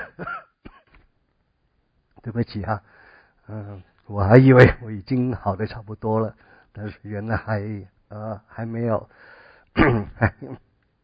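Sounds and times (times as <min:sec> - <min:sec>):
coughing: 0:00.0 - 0:00.9, 0:09.8 - 0:10.7
throat clearing: 0:00.0 - 0:00.9, 0:09.8 - 0:10.6
speech: 0:02.2 - 0:10.7.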